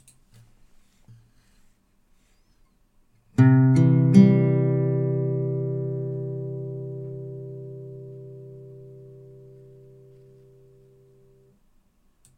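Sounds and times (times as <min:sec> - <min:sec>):
C chord on guitar: 0:03.4 - 0:11.5.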